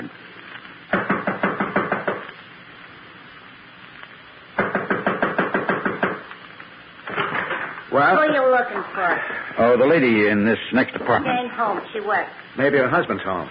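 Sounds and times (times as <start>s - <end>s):
firm rapid knocking on a second-floor apartment door: 0.9s - 2.2s, 4.6s - 6.2s
speech: 8.0s - 13.4s.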